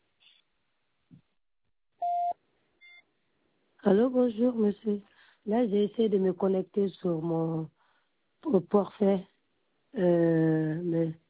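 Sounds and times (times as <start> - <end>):
electronic voicemail beep after a telephone greeting message: 2.0 - 3.0
speech: 3.8 - 7.8, 8.4 - 9.3, 10.0 - 11.2.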